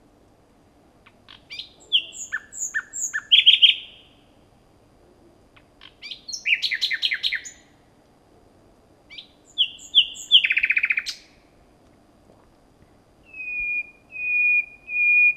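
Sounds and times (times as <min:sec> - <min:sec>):
common nightingale Luscinia megarhynchos singing: 0:01.0 - 0:04.3, 0:05.6 - 0:07.8, 0:09.1 - 0:11.4, 0:13.2 - 0:15.3.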